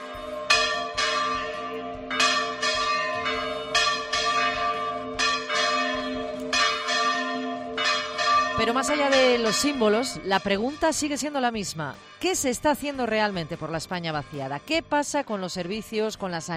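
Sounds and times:
church bells pealing: 0:00.0 - 0:11.3
speech: 0:08.6 - 0:16.5.

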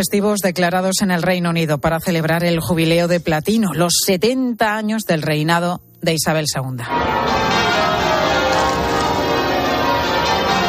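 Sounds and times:
speech: 0:00.0 - 0:08.1
church bells of a cathedral ringing in a full peal: 0:06.9 - 0:10.6.

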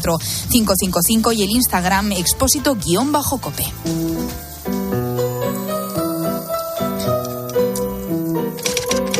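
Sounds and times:
speech: 0:00.0 - 0:04.8
steady melodic music bed: 0:00.0 - 0:09.1
rapid typewriter keystrokes: 0:06.9 - 0:09.1.

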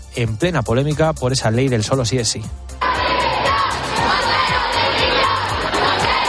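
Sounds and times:
speech: 0:00.2 - 0:02.9
large protest crowd chanting and shouting at a march in central Madrid: 0:02.8 - 0:06.2.

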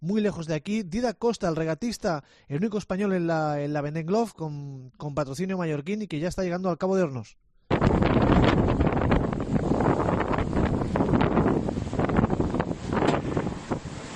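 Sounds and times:
speech: 0:00.0 - 0:08.8
strong wind roaring across a racing sailboat at sea in the Pacific: 0:07.7 - 0:14.1.

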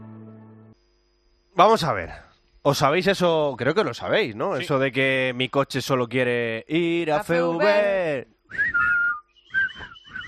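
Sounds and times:
speech: 0:01.6 - 0:08.8
several people whistling: 0:08.5 - 0:10.2.

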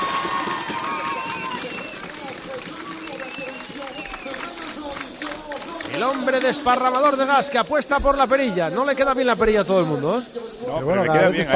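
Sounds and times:
large crowd applauding at podium ceremony: 0:00.0 - 0:07.9
speech: 0:06.0 - 0:11.5.

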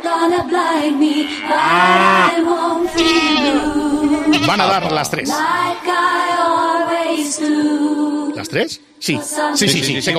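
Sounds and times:
speech: 0:00.0 - 0:10.1
flock of sheep bleating: 0:00.8 - 0:05.8.

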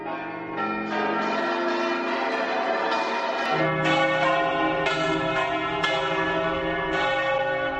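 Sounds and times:
church bells ringing from bell towers across Europe: 0:00.0 - 0:07.7.

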